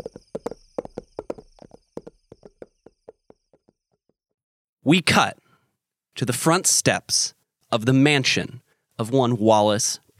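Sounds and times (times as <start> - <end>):
horse hooves clip-clopping at a walking pace: 0.0 - 4.0
speech: 4.9 - 5.4, 6.2 - 10.0.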